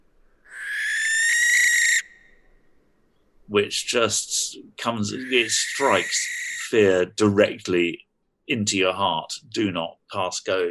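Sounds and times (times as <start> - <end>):
barn owl shriek: 0.5 - 2.5, 5.2 - 6.8
speech: 3.5 - 10.6.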